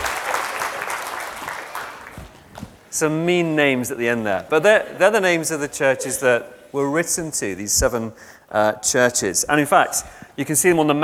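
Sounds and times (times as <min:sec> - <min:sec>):
crowd applauding: 0:00.0 - 0:02.9
speech: 0:03.0 - 0:11.0.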